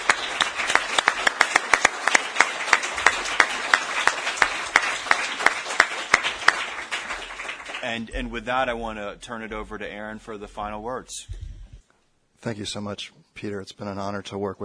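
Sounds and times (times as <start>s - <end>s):
audience applause for panelists: 0.0s - 8.1s
speech: 7.9s - 11.4s, 12.4s - 14.6s.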